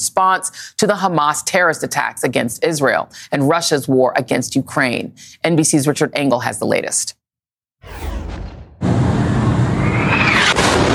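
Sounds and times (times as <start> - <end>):
speech: 0.0 - 7.2
loud explosion at a hospital with roaring rumble: 7.8 - 10.9
rushing whooshing noise: 7.8 - 10.9.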